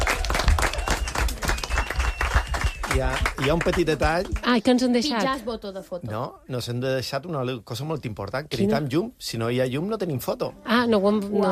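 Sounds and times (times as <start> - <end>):
crowd applauding loudly: 0.0 - 4.7
speech: 3.0 - 11.5.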